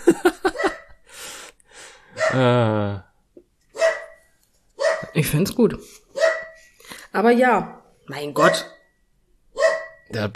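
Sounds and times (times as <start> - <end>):
laughter: 0.0 - 0.9
dog barking: 0.4 - 1.0, 2.1 - 2.5, 3.7 - 4.2, 4.8 - 5.2, 6.2 - 6.6, 8.4 - 8.9, 9.6 - 10.1
speech: 2.3 - 3.1, 5.2 - 6.0, 7.1 - 8.8, 10.1 - 10.3.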